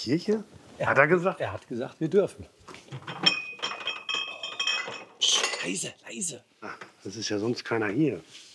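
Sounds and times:
speech: 0.0 - 3.1, 5.6 - 8.5
glass beer glasses clinking together: 3.1 - 5.9.

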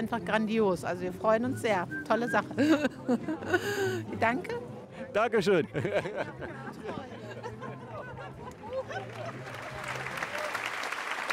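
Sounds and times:
speech: 0.0 - 7.2
murmured crowd chatter and scattered voices: 0.0 - 10.8
laughter: 1.8 - 4.5, 5.3 - 10.6
audience applause at a circus show: 8.5 - 11.3.

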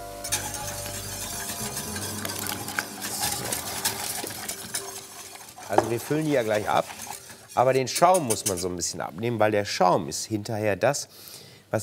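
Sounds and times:
utensil clinking and scraping against pot while stirring eggs into hot cream: 0.2 - 8.8
speech: 5.7 - 7.0, 7.6 - 11.8.

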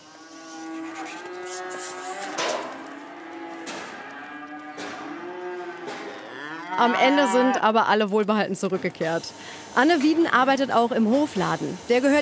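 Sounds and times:
young cattle mooing while driven onto a transport trailer on a farm: 0.0 - 7.7
speech: 6.8 - 12.2.

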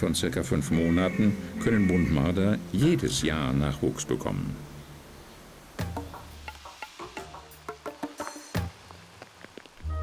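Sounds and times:
speech: 0.0 - 4.7
low steady hum: 1.3 - 5.8
rain drops on a hard surface: 3.9 - 10.0.

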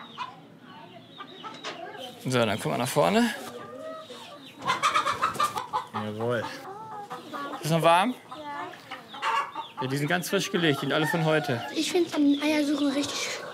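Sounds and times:
chickens clucking and squawking in a henhouse: 0.0 - 13.5
speech: 2.2 - 3.4, 6.0 - 6.7, 7.6 - 8.3, 9.8 - 13.4.

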